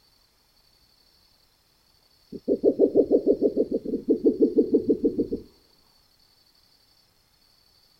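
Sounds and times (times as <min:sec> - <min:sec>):
Neotropical spectacled owl giving low knocking hoots: 0:02.3 - 0:05.5.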